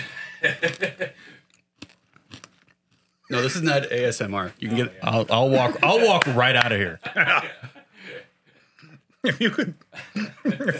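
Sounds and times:
laughter: 0.0 - 1.3, 5.3 - 10.7
speech: 0.4 - 1.1, 3.3 - 7.7, 9.2 - 10.7
person chewing crisp food: 0.5 - 4.0.

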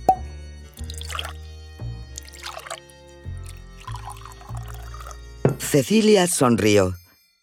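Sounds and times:
sherry being poured into a glass: 0.7 - 1.4, 2.0 - 5.2
speech: 5.7 - 7.0.

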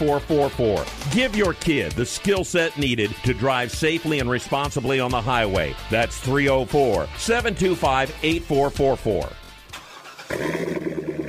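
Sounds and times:
speech: 0.0 - 9.4
Corvette sports car engine starting and rumbling: 9.3 - 11.2.

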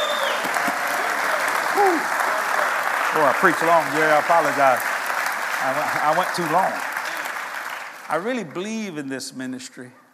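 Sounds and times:
crowd applauding: 0.0 - 8.9
person whooping: 1.7 - 2.3
speech: 3.1 - 4.9, 5.6 - 6.9, 8.1 - 10.0.

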